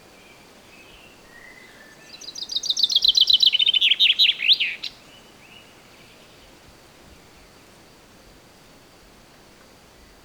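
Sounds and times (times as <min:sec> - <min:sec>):
faint background hiss: 0:00.0 - 0:10.2
Common chaffinch singing: 0:00.3 - 0:06.5.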